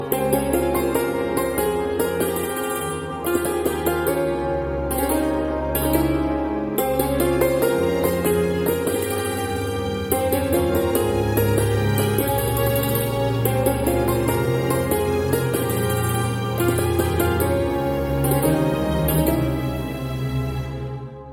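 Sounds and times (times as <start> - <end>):
santoor: 0.0 - 21.3.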